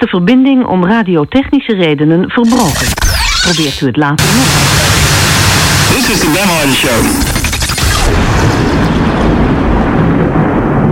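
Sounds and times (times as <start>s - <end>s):
speech: 0.0s - 5.0s, 5.9s - 7.4s
thunderstorm: 7.8s - 10.9s.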